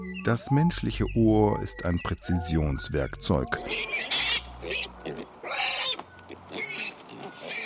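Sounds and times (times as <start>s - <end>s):
speech: 0.2s - 4.8s
piglets grunting and squealing: 3.5s - 7.6s.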